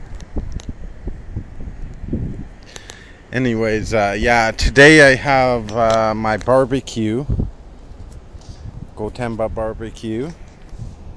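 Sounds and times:
outdoor wind buffeting the microphone: 0.0s - 11.1s
speech: 3.3s - 7.4s, 9.0s - 10.4s.

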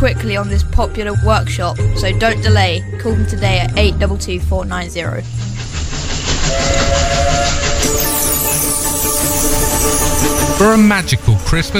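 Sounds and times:
speech: 0.0s - 5.6s, 10.6s - 11.7s
steam train rumbling and chugging: 0.0s - 11.7s
long steam train whistle: 6.4s - 10.7s.

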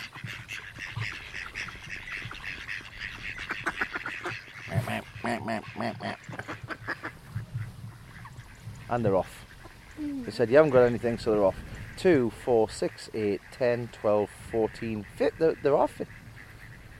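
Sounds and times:
group of mallard ducks quacking: 0.0s - 16.9s
speech: 5.3s - 6.4s, 8.9s - 9.4s, 10.0s - 16.2s.

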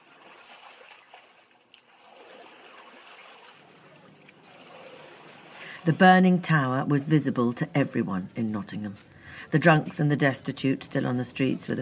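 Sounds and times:
oars splashing from a rowed boat: 0.0s - 10.1s
steady running water: 0.0s - 11.7s
speech: 5.8s - 11.7s.

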